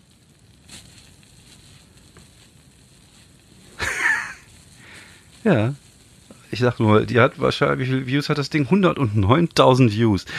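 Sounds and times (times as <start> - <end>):
water rushing gush: 3.6 - 10.3
laughter: 3.8 - 4.4
speech: 5.4 - 5.8, 6.5 - 10.3.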